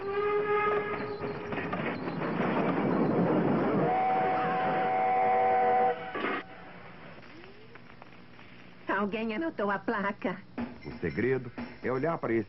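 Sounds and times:
train rumbling on rails: 0.0 - 6.6
speech: 9.1 - 12.4.

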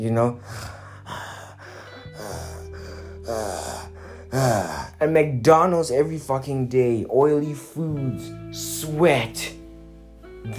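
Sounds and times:
speech: 0.0 - 1.2, 4.3 - 9.6
voice imitating heavy wheezy asthmatic breathing: 0.3 - 5.0.

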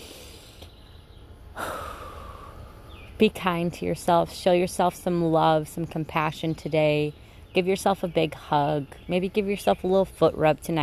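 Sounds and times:
person taking a deep breath in: 0.0 - 0.7, 1.6 - 2.8
hiss: 0.0 - 3.0
speech: 3.2 - 10.8.

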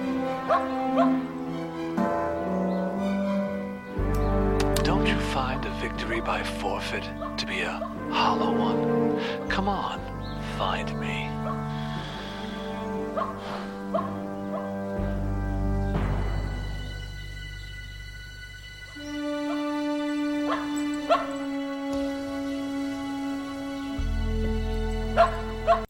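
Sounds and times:
steady droning musical score: 0.0 - 25.8
dog barking: 0.4 - 1.3, 7.1 - 8.0, 11.4 - 11.7, 13.1 - 14.8, 20.4 - 21.5, 25.1 - 25.8
speech: 5.8 - 11.6.

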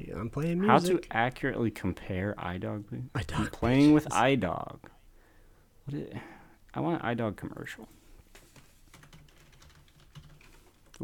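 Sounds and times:
speech: 0.2 - 5.0, 5.9 - 8.0
fast typing on a computer keyboard: 8.3 - 11.0.

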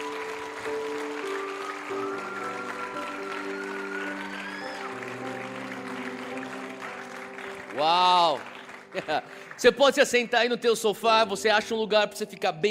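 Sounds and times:
audience applause: 0.0 - 10.7
sustained keyboard chords: 0.0 - 12.6
speech: 7.8 - 12.6.

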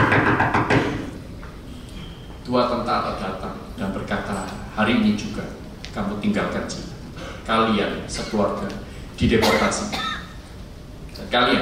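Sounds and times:
heavy pounding knocks on a house door: 0.0 - 1.1
speech: 2.5 - 4.2, 4.8 - 6.8, 7.5 - 10.0, 11.3 - 11.6.

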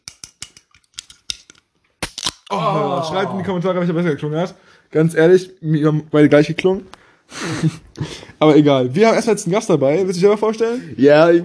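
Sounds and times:
metallic clicks and crackles of energy drink can: 0.0 - 2.5
blueberry energy drink can being pulled open: 0.1 - 2.5
laughter: 2.5 - 3.6
speech: 2.5 - 11.4.

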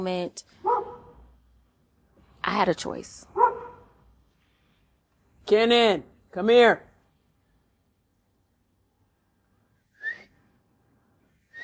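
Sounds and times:
speech: 0.0 - 0.7, 2.5 - 3.4, 5.5 - 6.9
person whistling: 10.0 - 10.3, 11.5 - 11.6.

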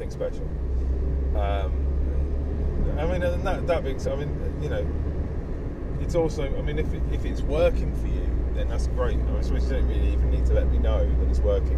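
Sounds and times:
driver talking: 0.0 - 0.6, 1.3 - 5.0, 5.9 - 11.7
deep rumble inside a moving car: 0.0 - 11.7
speech: 0.1 - 1.9, 2.8 - 5.2, 6.0 - 11.7.

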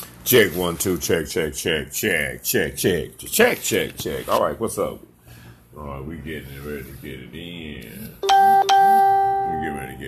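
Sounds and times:
speech: 0.3 - 5.2, 5.8 - 10.0
bright electronic notification chime: 8.2 - 10.0.

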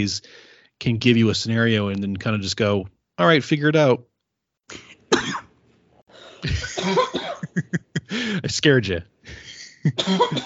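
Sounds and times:
speech: 0.0 - 4.1, 4.7 - 5.4, 6.4 - 10.4
person coughing: 4.7 - 5.5, 6.3 - 8.3, 9.6 - 10.4.

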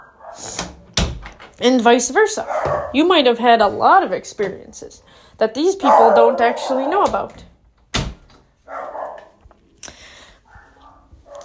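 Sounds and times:
dogs barking: 0.0 - 0.6, 2.4 - 3.2, 5.8 - 7.3, 8.6 - 9.4, 10.4 - 11.4
speech: 1.6 - 7.5.

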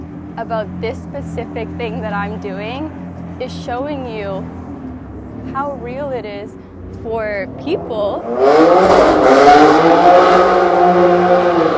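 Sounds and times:
motorcycle roaring past: 0.0 - 11.7
speech: 0.4 - 4.6, 5.4 - 11.5.

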